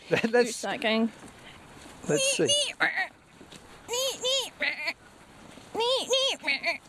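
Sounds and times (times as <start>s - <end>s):
speech: 0.1s - 1.4s, 2.0s - 3.2s, 5.8s - 6.8s
person imitating a great tit's call: 2.1s - 3.1s, 3.9s - 5.0s, 5.8s - 6.8s.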